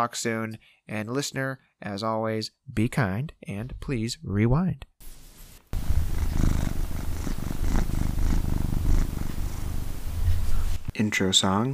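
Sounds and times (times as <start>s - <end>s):
speech: 0.0s - 6.0s, 11.0s - 11.7s
cat purring: 5.8s - 10.9s.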